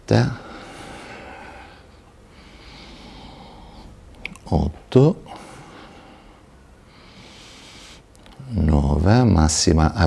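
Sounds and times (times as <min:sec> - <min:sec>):
speech: 0:00.1 - 0:00.4, 0:04.6 - 0:05.2, 0:09.5 - 0:10.0
faint breathing in during a floor exercise routine: 0:00.3 - 0:04.1, 0:05.3 - 0:08.5.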